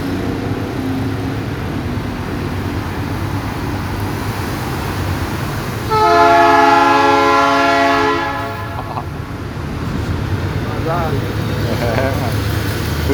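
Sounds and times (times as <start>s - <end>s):
low rolling rumble of passing train: 0.1s - 13.1s
passing train sounding its horn: 5.9s - 9.1s
laughter: 8.4s - 9.3s, 10.8s - 13.1s.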